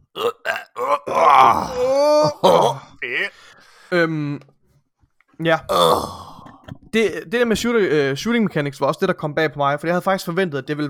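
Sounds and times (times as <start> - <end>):
speech: 0.2 - 0.4, 5.4 - 6.2, 6.9 - 10.8
man groaning and straining while reaching for a computer charger: 0.2 - 3.4, 5.7 - 6.5.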